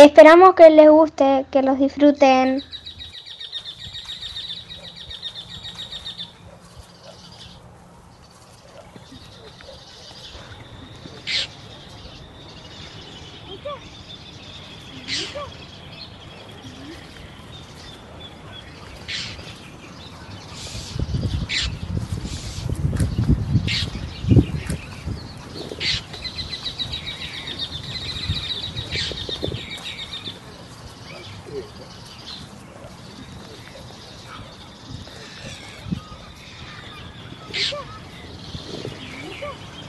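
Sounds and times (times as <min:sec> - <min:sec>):
speech: 0:00.0 - 0:02.8
local wild birds chirping outdoors: 0:00.0 - 0:39.8.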